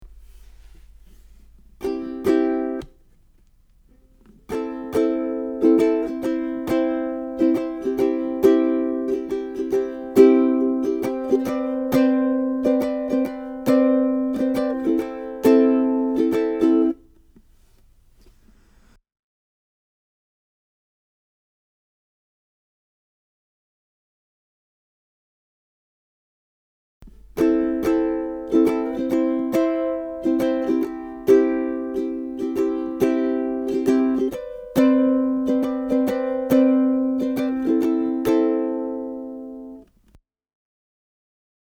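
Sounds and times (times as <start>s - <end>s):
ukulele chords: 0.0s - 17.8s, 27.0s - 40.1s.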